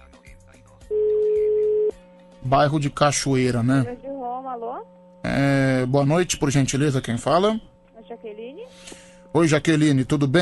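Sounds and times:
telephone ringback tone while placing a call: 0.9s - 1.9s
speech: 2.5s - 7.7s, 8.3s - 10.3s.

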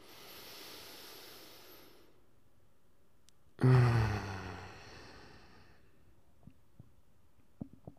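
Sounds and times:
deep breath into the belly during a guided relaxation exercise: 0.0s - 2.2s, 3.6s - 6.0s.

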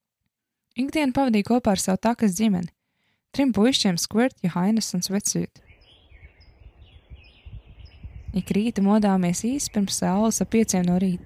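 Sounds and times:
speech: 0.8s - 5.7s, 8.4s - 11.2s
dawn chorus of birds chirping and warbling: 5.6s - 11.2s
low rumbling background: 5.8s - 11.2s.

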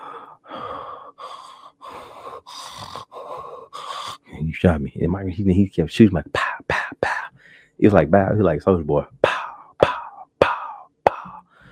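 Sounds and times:
voice imitating heavy raspy breathing: 0.0s - 4.4s, 6.4s - 7.5s, 9.2s - 11.7s
speech: 4.5s - 6.4s, 7.8s - 9.2s.

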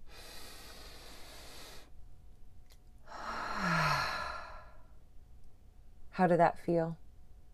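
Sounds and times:
deep breath in and out during a meditation exercise: 0.0s - 2.0s, 3.0s - 5.0s
speech: 6.2s - 7.0s.

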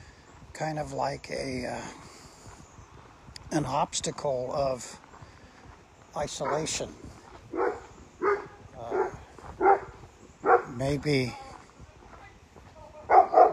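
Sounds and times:
speech: 0.6s - 2.1s, 3.5s - 5.0s, 6.1s - 7.1s, 10.8s - 11.4s
dog barking: 6.4s - 6.8s, 7.5s - 10.8s, 13.1s - 13.5s.

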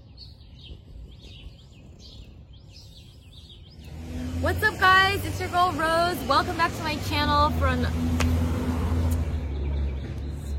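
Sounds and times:
delivery truck driving past with deep steady engine drone: 3.7s - 10.5s
speech: 4.4s - 8.3s.

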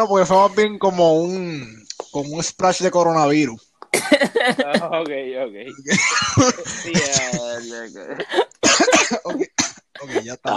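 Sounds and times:
speech: 0.0s - 10.5s
laughter: 4.0s - 10.5s
person coughing after choking on beer: 5.7s - 10.5s
person wheezing and gasping: 6.4s - 10.4s.

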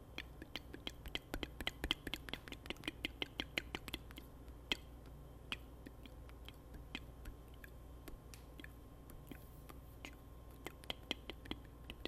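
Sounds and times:
wet mouth sounds: 0.1s - 12.0s.

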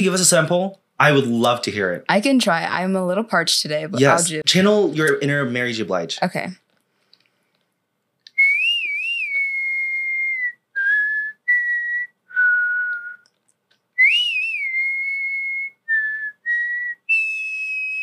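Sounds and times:
speech: 0.0s - 6.6s
person whistling a cowboy standoff tune: 8.3s - 13.3s, 14.0s - 18.0s.

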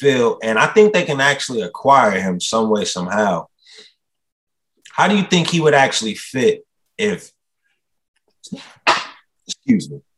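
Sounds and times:
speech: 0.0s - 3.9s, 5.0s - 7.4s, 8.4s - 9.0s, 9.6s - 10.1s
soft breathy sounds: 3.6s - 4.1s
person sneezing: 8.5s - 9.4s.

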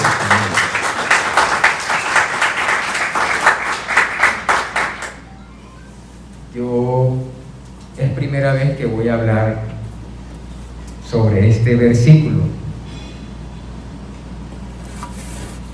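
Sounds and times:
crowd applauding after a prayer: 0.0s - 5.3s
speech: 8.3s - 9.7s, 11.1s - 12.5s.

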